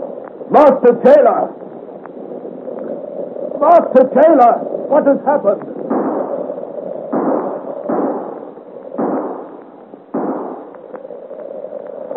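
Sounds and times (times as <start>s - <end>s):
constant rushing noise: 0.0s - 12.1s
speech: 0.5s - 1.6s, 3.6s - 5.7s
gunshots: 5.8s - 10.8s.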